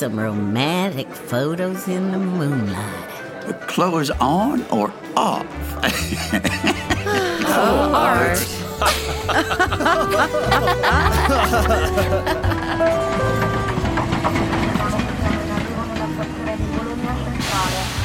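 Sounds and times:
speech: 0.0s - 13.5s
busy murmur of voices: 0.0s - 18.0s
laughter: 5.6s - 13.7s
train rolling into a station: 8.6s - 18.0s.

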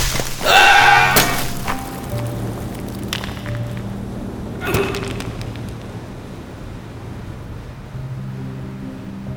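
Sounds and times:
rock breaking loose and tumbling down: 0.0s - 6.3s.

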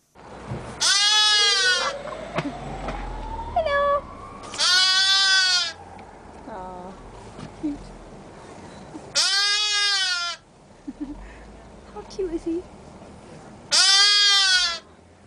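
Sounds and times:
quiet outdoor noise: 0.0s - 15.2s
lamb bleating at a petting zoo: 0.8s - 1.9s, 4.6s - 5.8s, 9.1s - 10.4s, 13.7s - 14.8s.

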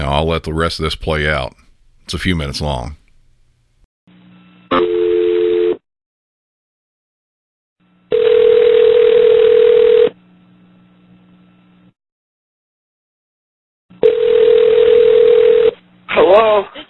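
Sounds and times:
speech: 0.1s - 3.0s
telephone ringback tone during an outgoing emergency call center callback: 4.7s - 5.8s, 8.1s - 10.2s, 14.0s - 15.8s.

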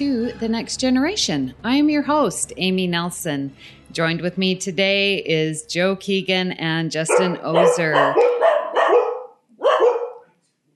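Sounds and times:
speech: 0.0s - 8.4s
dogs barking: 7.1s - 10.4s.

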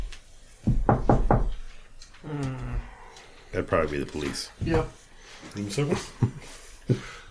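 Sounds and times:
knocking on a door: 0.6s - 1.6s
speech: 3.6s - 7.2s.

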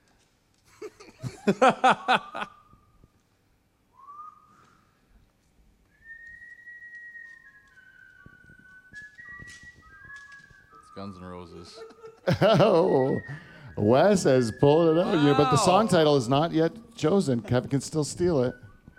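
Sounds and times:
bursts of laughter: 0.8s - 2.6s, 11.8s - 13.2s
speech: 1.5s - 2.5s, 11.7s - 18.6s
person whistling a rock melody: 3.9s - 5.0s, 5.9s - 16.3s, 18.1s - 18.9s
light clatter: 5.4s - 10.8s.

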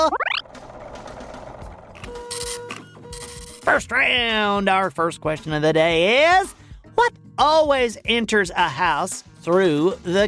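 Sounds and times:
rising electronic chirp: 0.0s - 0.5s
speech: 3.7s - 10.2s.

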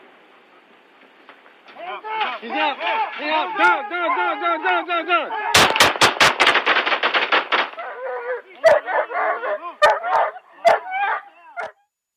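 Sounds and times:
rapid burst of loud sharp cracks and bangs: 1.0s - 3.8s, 5.5s - 7.9s
speech: 1.8s - 5.5s
police dog barking excitedly: 7.8s - 11.8s.

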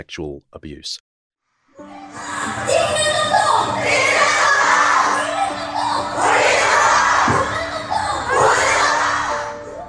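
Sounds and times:
speech: 0.0s - 1.1s, 2.5s - 4.2s
huge crowd of women protesting: 1.8s - 9.7s.

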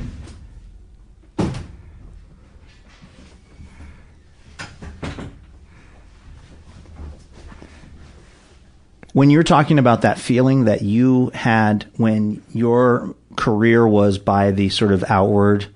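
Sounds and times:
door swinging shut with a solid thud: 0.0s - 2.0s, 4.6s - 5.5s
speech: 9.2s - 15.7s.

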